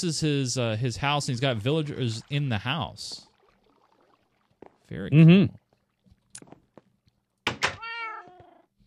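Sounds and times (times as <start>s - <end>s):
speech: 0.0s - 3.3s, 4.9s - 5.6s
video game cat meowing: 7.8s - 8.6s.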